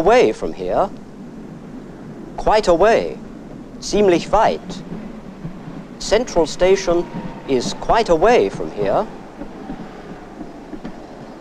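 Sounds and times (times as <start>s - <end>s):
speech: 0.0s - 1.0s, 2.4s - 5.0s, 6.0s - 9.2s
number 11 tram in Dresden pulling in at a stop: 0.0s - 11.4s
soft knocks and thuds: 4.7s - 11.4s.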